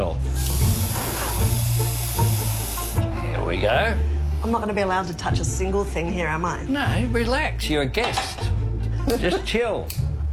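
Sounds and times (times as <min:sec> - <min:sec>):
water boiling: 0:00.4 - 0:03.0
speech: 0:03.6 - 0:10.1.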